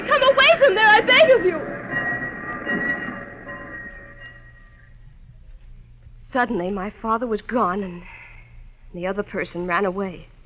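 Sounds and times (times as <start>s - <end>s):
flagged-down train rumbling: 0.0s - 6.2s
speech: 0.7s - 2.0s, 6.3s - 8.1s, 8.9s - 10.3s.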